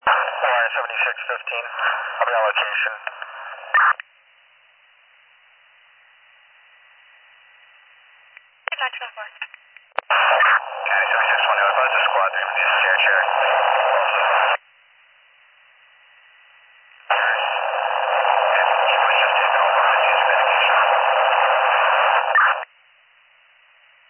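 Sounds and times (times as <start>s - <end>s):
garbled two-way radio transmissions in bursts of harsh static: 0.0s - 4.0s, 8.7s - 14.6s, 17.0s - 22.7s
voice in two-way radio transmission: 0.0s - 4.0s, 10.1s - 14.6s, 17.1s - 22.6s
speech: 0.7s - 4.1s, 8.9s - 9.6s.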